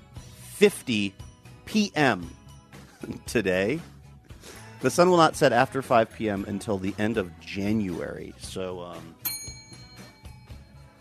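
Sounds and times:
speech: 0:00.6 - 0:02.4, 0:03.0 - 0:09.2
bright bell ringing: 0:09.2 - 0:10.9.

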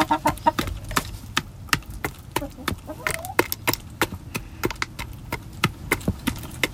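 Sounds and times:
chickens pecking while feeding: 0:00.0 - 0:06.7.

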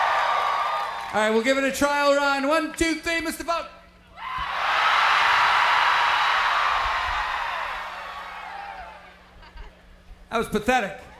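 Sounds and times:
audience screaming in unison: 0:00.0 - 0:01.2, 0:04.2 - 0:09.3
speech: 0:01.1 - 0:03.8, 0:10.3 - 0:11.0.

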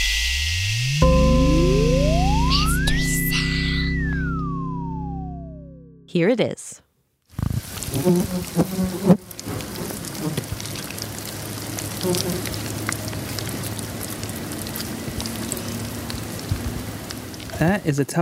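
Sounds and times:
low hum: 0:00.0 - 0:06.1
speech: 0:06.1 - 0:06.8, 0:07.9 - 0:09.3, 0:12.0 - 0:12.7, 0:17.6 - 0:18.1
fly buzzing around worms in a worm farm: 0:07.6 - 0:10.8, 0:11.9 - 0:12.6.

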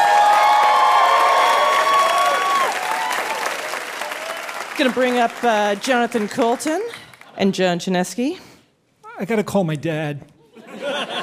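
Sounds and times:
studio audience cheers and whoops: 0:00.0 - 0:04.6
studio audience applause: 0:00.0 - 0:07.3
speech: 0:04.8 - 0:08.5, 0:09.2 - 0:10.3
laughter: 0:10.4 - 0:11.2.

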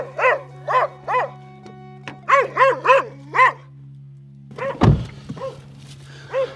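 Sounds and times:
dog barking at visitor: 0:00.0 - 0:01.4, 0:02.3 - 0:03.7, 0:04.5 - 0:05.7, 0:06.3 - 0:06.5
loud thump: 0:04.8 - 0:05.4.

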